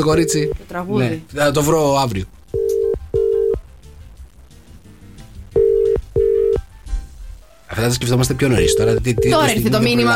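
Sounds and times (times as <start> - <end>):
ringback tone of an outgoing phone call: 0.0 - 0.6, 2.6 - 3.6, 5.6 - 6.6, 8.6 - 9.6
speech: 0.0 - 2.4, 7.8 - 10.1.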